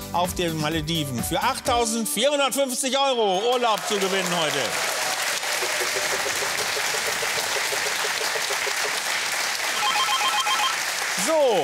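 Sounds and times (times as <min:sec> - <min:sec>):
speech: 0:00.1 - 0:04.9, 0:11.3 - 0:11.6
applause-like crowd noise: 0:03.3 - 0:11.6
telephone ringing with electronic trill: 0:09.7 - 0:10.8.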